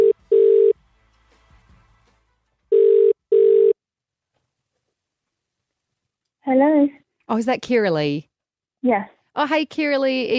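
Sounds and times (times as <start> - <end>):
phone line electronic ringback tone in double bursts: 0.0 - 0.8, 2.7 - 3.8
speech: 6.6 - 10.3.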